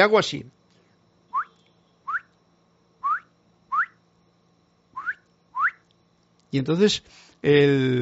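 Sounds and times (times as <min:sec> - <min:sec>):
speech: 0:00.0 - 0:00.6, 0:06.5 - 0:07.9
faint hum: 0:00.0 - 0:07.9
person whistling short rising chirps mimicking a small creature: 0:01.3 - 0:02.3, 0:03.0 - 0:04.0, 0:05.0 - 0:05.8.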